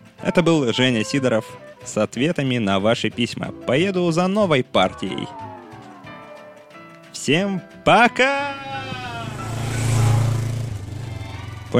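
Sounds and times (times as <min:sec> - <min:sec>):
speech: 0:00.2 - 0:05.5, 0:07.2 - 0:08.8
motorcycle engine starting after its rider has fallen: 0:09.1 - 0:11.7.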